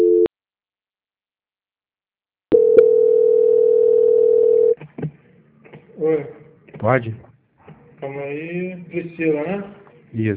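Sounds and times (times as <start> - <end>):
telephone transfer tones on a bank call: 0.0 - 0.3, 2.5 - 4.8
speech: 6.0 - 7.3, 8.1 - 10.3.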